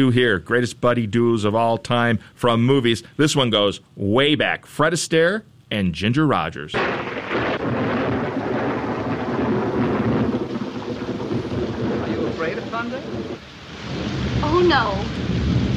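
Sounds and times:
speech: 0.0s - 7.2s
steady heavy rain: 6.8s - 15.7s
thunder rumbling loud and close: 6.8s - 15.7s.

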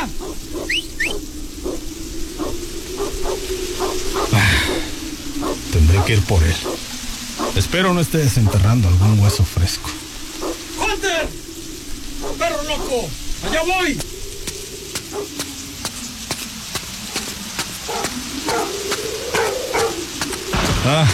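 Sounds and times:
dog barking at a grave in a cemetery: 0.0s - 1.8s, 2.4s - 4.8s, 5.4s - 6.8s, 7.4s - 7.6s, 8.4s - 8.7s, 10.4s - 10.6s, 12.2s - 13.6s, 15.0s - 15.5s, 17.2s - 20.1s
crackling rustling background: 0.0s - 21.1s
speech: 6.1s - 6.8s, 7.6s - 10.0s, 12.7s - 14.1s, 20.8s - 21.1s.

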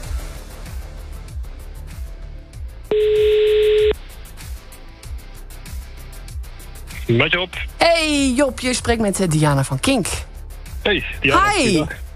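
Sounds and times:
outgoing telephone call ring tone: 2.9s - 4.0s
speech: 7.1s - 10.3s, 10.9s - 12.0s.

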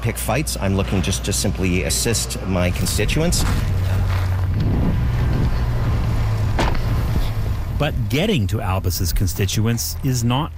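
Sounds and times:
speech: 0.0s - 5.1s, 7.8s - 10.5s
car bumps and rattles on a dusty logging road: 0.0s - 10.5s
car engine rumble on a dusty logging road: 0.0s - 10.5s
road noise on a dusty logging road: 0.0s - 10.5s.

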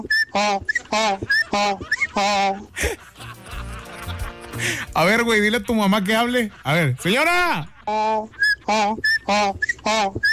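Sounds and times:
speech: 0.0s - 3.1s, 4.6s - 10.3s
laughter: 0.8s - 8.6s
woman whistling: 8.4s - 10.3s.

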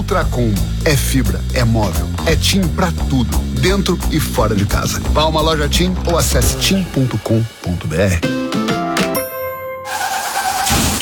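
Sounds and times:
noisy rumble: 0.0s - 8.2s
speech: 0.1s - 8.6s
car crash impacts: 9.9s - 10.9s.

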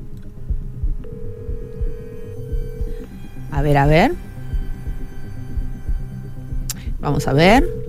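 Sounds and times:
low throbbing background: 0.0s - 7.8s
ringback tone of an outgoing telephone call: 1.0s - 3.1s, 7.5s - 7.8s
speech: 3.5s - 4.3s, 7.0s - 7.8s.

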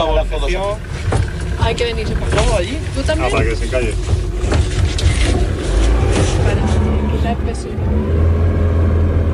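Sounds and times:
speech: 0.0s - 1.0s, 1.6s - 5.5s, 6.4s - 8.7s
boat motor rumble on a reservoir: 0.0s - 9.3s.

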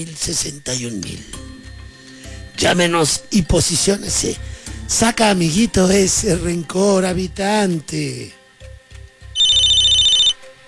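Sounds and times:
speech: 0.0s - 1.5s, 2.6s - 8.4s
telephone ringing with an incoming call: 9.4s - 10.6s.

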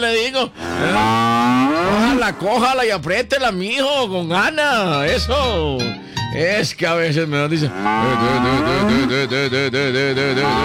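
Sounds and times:
speech: 0.0s - 10.6s
cow mooing while its legs are tied: 0.6s - 2.5s, 7.6s - 9.2s, 10.4s - 10.6s
laughter: 7.9s - 10.6s.

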